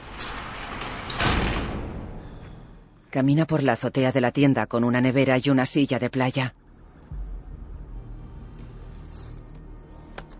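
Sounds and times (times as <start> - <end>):
metal roll-down shop shutter being pulled down: 0.0 - 2.4
speech: 3.1 - 6.6.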